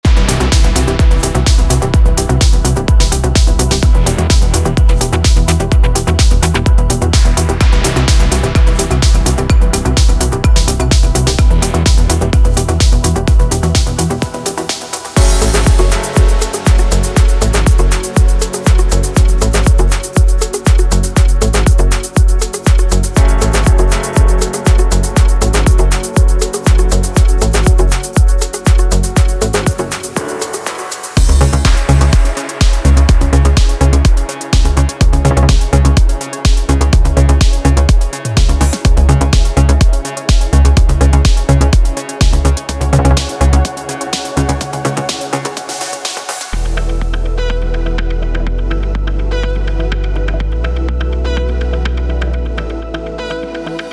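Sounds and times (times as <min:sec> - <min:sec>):
drum samples: 0:00.0 - 0:53.9.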